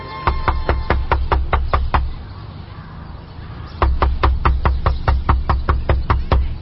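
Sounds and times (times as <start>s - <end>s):
rapid knocking on a balcony door: 0.3s - 2.2s, 3.8s - 6.6s.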